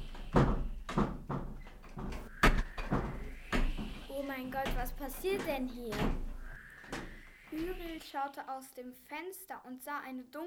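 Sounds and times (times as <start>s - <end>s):
doors and windows rattling and knocking: 0.0s - 7.8s
speech: 4.4s - 6.3s, 7.6s - 10.4s.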